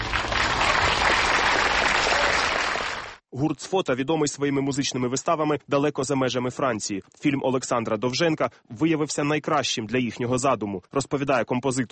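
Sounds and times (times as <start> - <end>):
large audience applause in a concert hall: 0.0 - 3.2
speech: 3.4 - 11.9.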